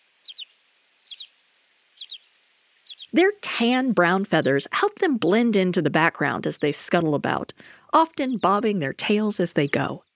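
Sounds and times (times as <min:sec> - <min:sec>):
American pipit high thin double pip calls: 0:00.0 - 0:04.6, 0:08.2 - 0:08.6
speech: 0:03.1 - 0:10.1.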